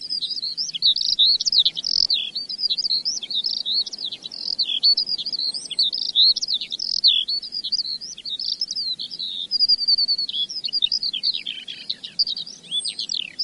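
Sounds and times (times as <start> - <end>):
Eurasian skylark song: 0.0 - 13.4.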